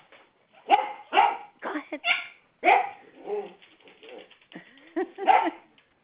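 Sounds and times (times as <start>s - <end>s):
dog yipping: 0.6s - 1.5s, 2.1s - 4.2s
two dogs barking at each other: 0.6s - 1.6s, 2.6s - 3.6s, 5.2s - 5.7s.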